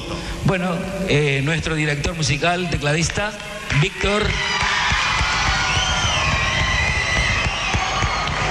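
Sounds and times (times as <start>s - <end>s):
speech: 0.5s - 4.7s
audience clapping: 3.0s - 8.5s
crowd cheering for band member: 3.6s - 8.5s
whoops and shouts: 4.1s - 8.5s.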